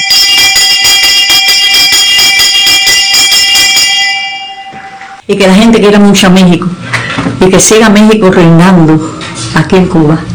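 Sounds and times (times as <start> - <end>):
traditional ceremonial bells clanging: 0.0 - 5.2
speech: 5.3 - 10.3.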